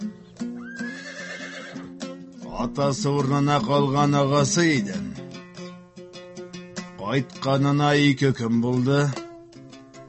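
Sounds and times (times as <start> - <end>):
stallion neighing: 0.6 - 1.9
speech: 2.6 - 5.1, 7.1 - 9.2.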